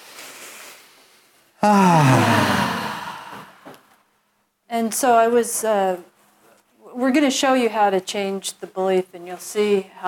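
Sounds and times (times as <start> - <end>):
speech: 1.6 - 2.4, 4.8 - 6.1, 7.0 - 10.0
group taking a deep breath and sighing: 1.6 - 3.8.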